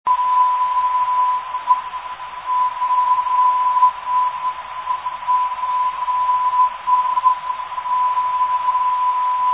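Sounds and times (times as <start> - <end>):
597 kHz non-directional beacon signal: 0.1 - 9.5.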